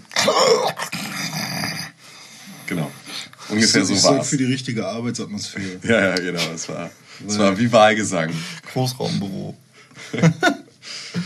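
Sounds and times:
person imitating snoring with a rasping growl-like rumble: 0.2s - 2.0s
speech: 3.5s - 11.2s
laughter: 9.9s - 11.2s.

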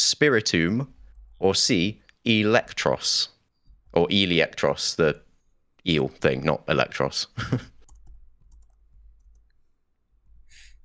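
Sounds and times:
speech: 0.1s - 3.3s, 3.9s - 5.2s, 5.8s - 7.7s
keyboard typing: 1.0s - 1.4s, 7.7s - 10.8s.

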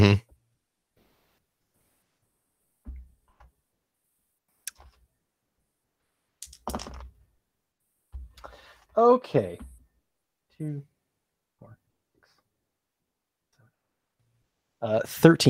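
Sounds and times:
dice being scooped up and rattled: 6.4s - 7.1s
speech: 9.0s - 9.7s, 10.6s - 10.9s, 14.8s - 15.4s.

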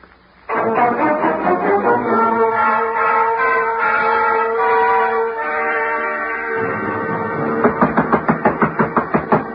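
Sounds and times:
sustained music: 0.5s - 9.5s
knocking thuds of footsteps with a cane climbing stairs: 6.6s - 9.5s.

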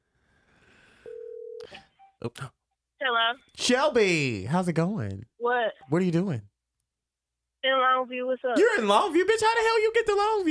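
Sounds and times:
telephone line ringing tone: 1.0s - 2.2s
speech: 1.6s - 6.5s, 7.6s - 10.4s.

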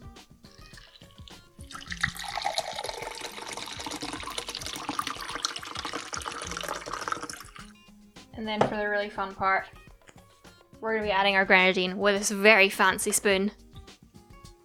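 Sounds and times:
shaken cocktail being strained into a tumbler: 0.5s - 7.7s
speech: 8.4s - 9.8s, 10.8s - 13.6s.

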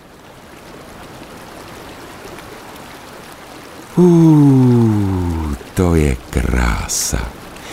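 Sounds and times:
flowing river water rushing and burbling: 0.6s - 7.7s
speech: 4.0s - 4.7s, 5.8s - 7.4s.

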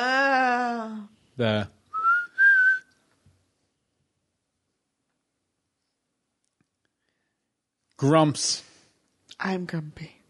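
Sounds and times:
speech: 1.4s - 1.8s, 8.0s - 8.7s, 9.4s - 10.2s
man whistling a short lilting tune: 1.9s - 3.0s.

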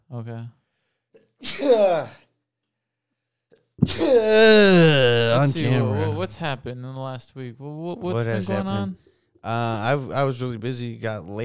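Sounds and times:
speech: 0.1s - 0.6s, 1.4s - 2.2s, 3.8s - 11.4s
loud sneeze: 1.2s - 2.3s, 3.8s - 5.4s.

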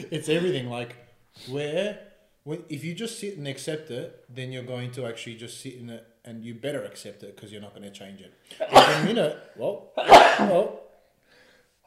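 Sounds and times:
speech: 0.0s - 10.9s
person sneezing: 8.6s - 9.2s, 10.0s - 10.7s.

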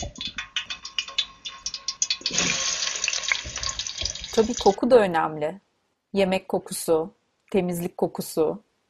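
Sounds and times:
hot frying oil crackling with rapid uneven pops: 0.0s - 4.8s
speech: 4.4s - 8.7s.

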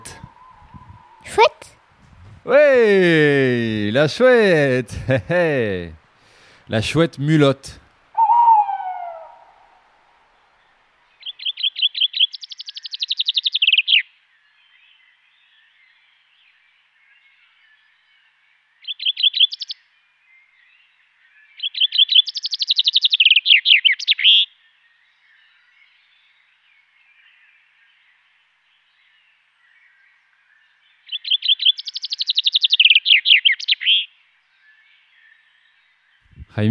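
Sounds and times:
common chaffinch song: 0.0s - 6.0s, 6.7s - 14.1s, 18.8s - 19.9s, 21.6s - 26.9s, 30.7s - 36.6s
speech: 2.4s - 6.0s, 6.7s - 7.8s
laughter: 4.8s - 5.9s.

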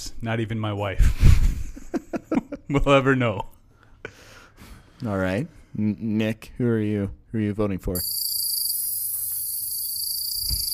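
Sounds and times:
speech: 0.2s - 1.5s, 2.7s - 3.5s, 5.0s - 8.1s
crickets chirping played from a cell phone speaker: 8.0s - 10.7s.

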